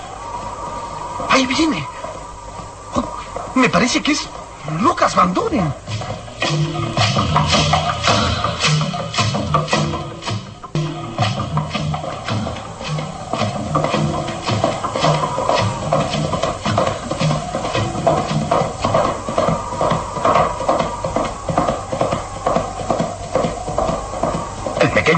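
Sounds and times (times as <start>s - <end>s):
horse galloping: 0.0s - 25.1s
speech: 1.2s - 2.0s, 3.6s - 7.8s.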